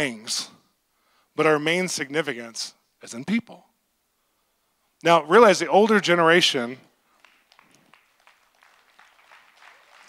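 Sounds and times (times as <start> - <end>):
speech: 0.0 - 0.5, 1.4 - 3.7, 5.0 - 6.9
audience clapping: 7.1 - 10.0.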